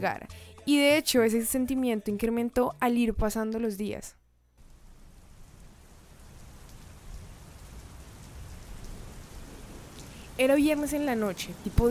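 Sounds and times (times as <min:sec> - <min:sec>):
speech: 0:00.0 - 0:04.2, 0:10.4 - 0:11.8
steady night rain pattering against a window: 0:04.6 - 0:11.8.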